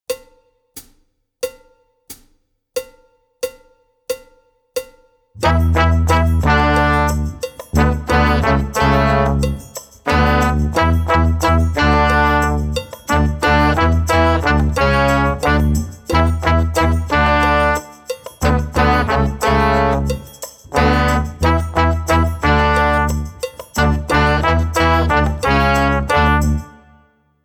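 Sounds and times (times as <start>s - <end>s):
brass music: 5.4s - 27.1s.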